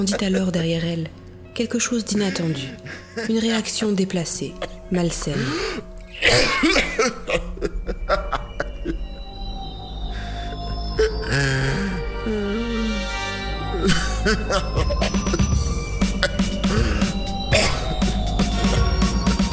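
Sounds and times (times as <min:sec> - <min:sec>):
speech: 0:00.0 - 0:07.2
person coughing harshly in a coughing fit: 0:04.6 - 0:09.0, 0:13.7 - 0:15.4, 0:16.2 - 0:18.0
strained throaty wheezing: 0:04.6 - 0:09.3, 0:10.0 - 0:19.1.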